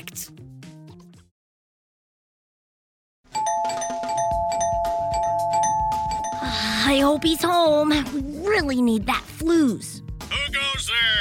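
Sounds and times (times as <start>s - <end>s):
speech: 0.1s - 0.4s, 7.1s - 11.1s
doorbell chiming at factory gate: 3.3s - 7.5s.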